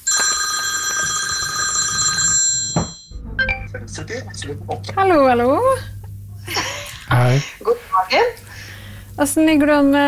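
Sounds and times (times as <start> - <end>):
bright electronic telephone ringtone from an incoming call: 0.0 - 3.7
speech: 3.8 - 6.0, 7.1 - 8.4, 9.2 - 10.0.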